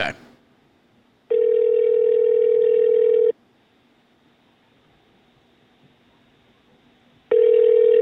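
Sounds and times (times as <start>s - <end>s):
telephone ringback tone waiting for an answer: 1.3s - 3.3s, 7.3s - 8.0s.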